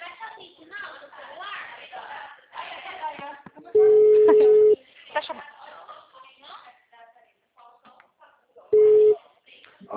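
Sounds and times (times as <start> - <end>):
people talking: 0.0 - 9.9
telephone busy tone after a dropped call: 3.8 - 4.8, 8.8 - 9.2.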